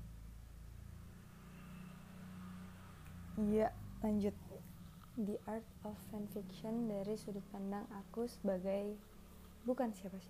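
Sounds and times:
motorcycle engine passing by outside: 0:00.0 - 0:10.2
speech: 0:03.4 - 0:04.5, 0:05.2 - 0:10.2.

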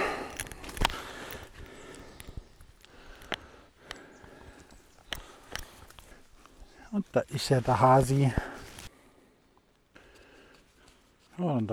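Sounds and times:
donkey hooves clip-clopping: 0:00.0 - 0:08.9
soft outdoor rustle: 0:00.0 - 0:11.7
speech: 0:07.0 - 0:08.5.

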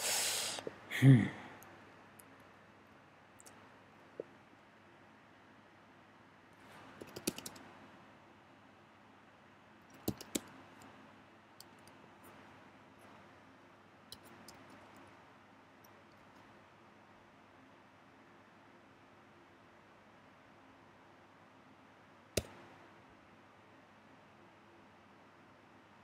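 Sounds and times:
faint steady hiss: 0:00.0 - 0:26.0
computer keyboard clicks: 0:07.0 - 0:07.7, 0:09.9 - 0:10.6, 0:14.1 - 0:14.8.

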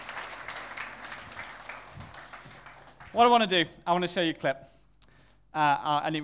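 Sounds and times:
audience applause: 0:00.0 - 0:03.5
speech: 0:03.1 - 0:04.8, 0:05.5 - 0:06.2.

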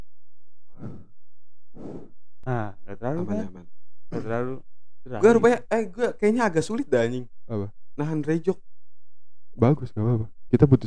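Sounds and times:
low steady hum: 0:00.0 - 0:10.8
breath blown into microphone pop filter to test it: 0:00.8 - 0:01.1, 0:01.8 - 0:02.1
speech: 0:02.5 - 0:08.7, 0:09.6 - 0:10.8.

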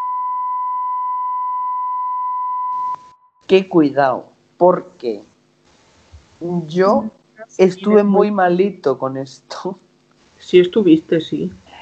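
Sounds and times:
steady loud censor bleep tone: 0:00.0 - 0:03.4
speech: 0:03.5 - 0:05.3, 0:06.4 - 0:09.8, 0:10.4 - 0:11.8.

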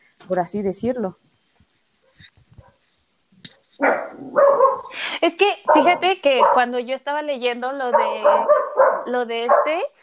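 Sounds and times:
speech: 0:00.3 - 0:01.3, 0:05.2 - 0:10.0
small dog barking: 0:03.8 - 0:05.0, 0:05.7 - 0:06.7, 0:07.9 - 0:09.9.

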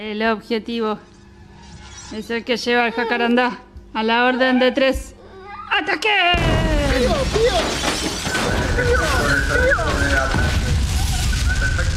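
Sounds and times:
speech: 0:00.0 - 0:01.1, 0:02.1 - 0:05.2, 0:05.8 - 0:07.9
debris crashing and shattering: 0:06.4 - 0:11.9
explosions: 0:06.4 - 0:11.9
rumbling booms: 0:06.4 - 0:11.9.

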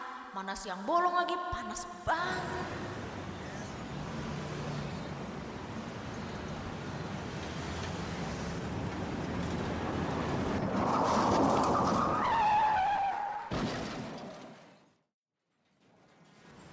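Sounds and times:
speech: 0:00.4 - 0:03.0
steady roadway rumble: 0:02.3 - 0:15.0
angkot minibus brakes squealing as it grazes a woman: 0:03.0 - 0:13.5.

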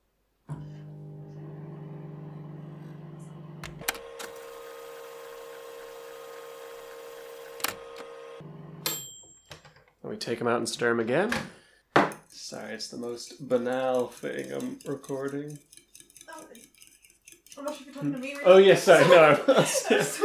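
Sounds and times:
microwave oven humming while heating eggs: 0:00.5 - 0:09.0
speech: 0:10.1 - 0:11.6, 0:12.5 - 0:15.7, 0:18.0 - 0:20.2
laughter: 0:18.6 - 0:20.2.

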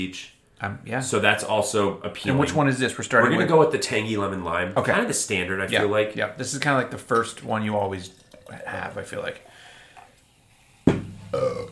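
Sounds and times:
speech: 0:00.0 - 0:09.5, 0:11.3 - 0:11.7
loud burp after drinking carbonated soda: 0:11.3 - 0:11.7.

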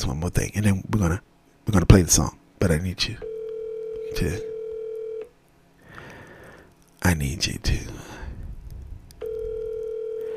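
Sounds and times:
faint noise: 0:00.0 - 0:10.3
speech: 0:00.1 - 0:03.3, 0:04.1 - 0:04.5, 0:07.0 - 0:08.2
telephone ringback tone on an outgoing call: 0:03.2 - 0:05.3, 0:09.2 - 0:10.3.

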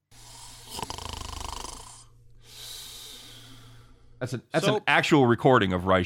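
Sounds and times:
person snoring: 0:00.0 - 0:04.0
speech: 0:04.2 - 0:06.0.

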